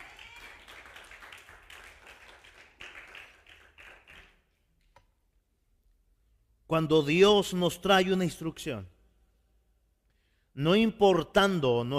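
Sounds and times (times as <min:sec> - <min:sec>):
crowd applauding: 0:00.0 - 0:04.6
speech: 0:06.7 - 0:09.0, 0:10.6 - 0:11.9.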